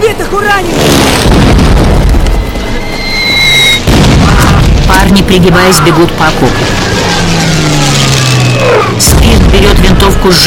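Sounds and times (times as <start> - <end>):
speech: 0.3 - 0.9, 5.2 - 6.9, 8.6 - 10.4
bomb explosions in a war film battle scene at a trench: 1.0 - 2.9, 3.5 - 10.4
high whistling tone: 2.4 - 3.8.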